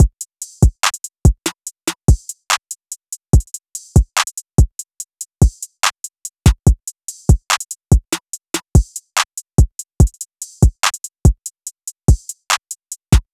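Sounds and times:
hip hop drum loop at 144 BPM: 0:00.0 - 0:13.3.

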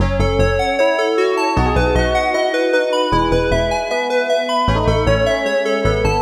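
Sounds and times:
happy melody loop in E major at 154 BPM: 0:00.0 - 0:06.2.

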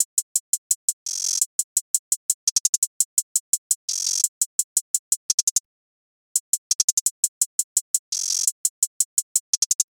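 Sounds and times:
hi-hat drum loop: 0:00.0 - 0:05.6, 0:06.4 - 0:09.8.

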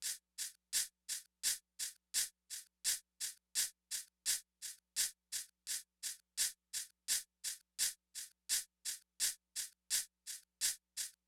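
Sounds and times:
diffuse lo-fi drum loop: 0:00.0 - 0:11.2
lo-fi shaker: 0:00.0 - 0:11.2.

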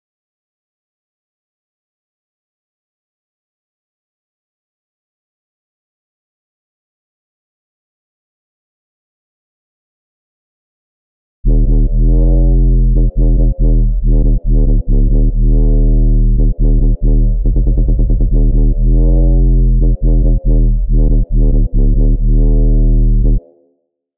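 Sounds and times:
UK Garage bass loop in D sharp minor: 0:11.5 - 0:23.5.

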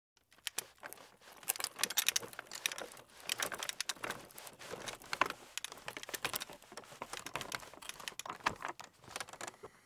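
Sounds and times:
walker being pushed: 0:00.2 - 0:09.8.

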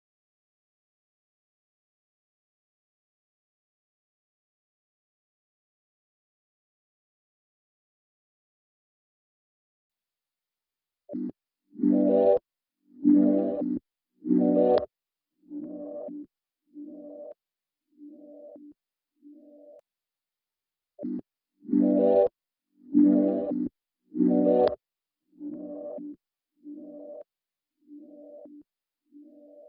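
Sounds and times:
97 BPM E minor melodic texture loop: 0:11.8 - 0:12.4, 0:13.0 - 0:14.8, 0:15.5 - 0:16.2, 0:16.8 - 0:17.4, 0:18.1 - 0:18.7, 0:21.0 - 0:22.3, 0:22.9 - 0:24.8, 0:25.4 - 0:27.2, 0:28.0 - 0:28.6.

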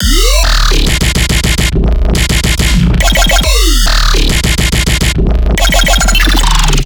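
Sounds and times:
riddim bass loop: 0:00.0 - 0:06.8.

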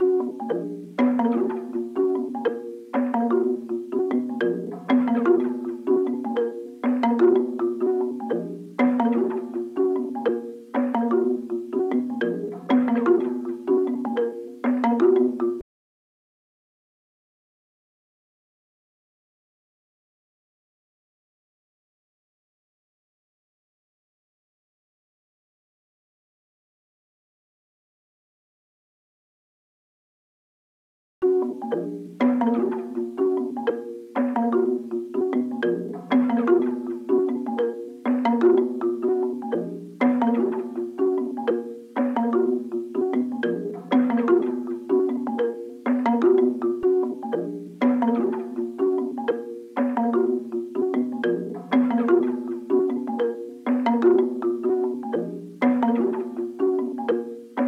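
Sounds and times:
mallet percussion loop at 123 BPM in A sharp minor: 0:00.0 - 0:15.6, 0:31.2 - 0:57.6.

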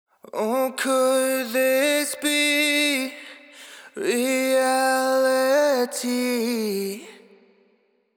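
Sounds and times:
wet sung vocal phrase in A minor: 0:00.2 - 0:07.8.

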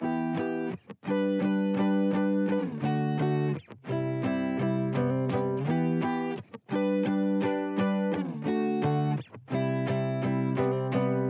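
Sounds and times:
guitar chords in G major at 170 BPM: 0:00.0 - 0:11.2.

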